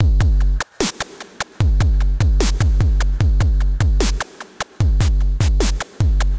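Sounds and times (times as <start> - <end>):
drum machine beat: 0.0 - 6.3.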